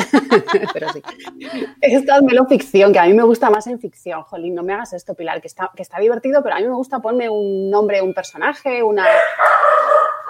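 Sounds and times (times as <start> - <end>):
laughter: 0.0 - 1.8
speech: 0.4 - 9.9
dog barking: 9.0 - 10.2.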